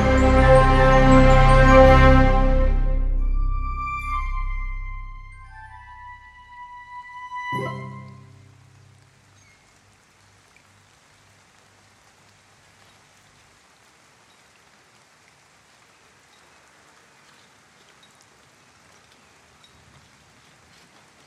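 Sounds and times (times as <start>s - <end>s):
steady rain on the stones and roof slates of a town square: 0.0s - 21.2s.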